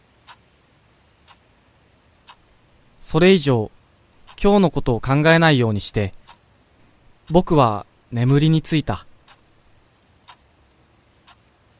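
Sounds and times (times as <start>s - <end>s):
faint hiss: 0.0s - 11.7s
room clock ticking: 0.2s - 0.5s, 1.2s - 1.5s, 2.2s - 3.2s, 4.2s - 5.0s, 6.1s - 6.5s, 7.2s - 9.6s, 10.2s - 10.4s, 11.2s - 11.5s
speech: 3.1s - 3.8s, 4.4s - 6.2s, 7.3s - 9.1s.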